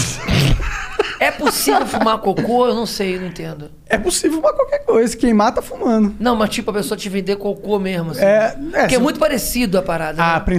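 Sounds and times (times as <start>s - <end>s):
person sneezing: 0.0s - 0.7s
laughter: 0.0s - 3.3s
speech: 1.3s - 10.5s.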